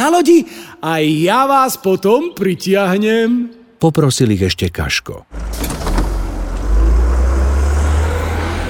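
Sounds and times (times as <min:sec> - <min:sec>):
speech: 0:00.1 - 0:05.8
bus engine rumbling at a station as the bus pulls away: 0:05.3 - 0:08.6.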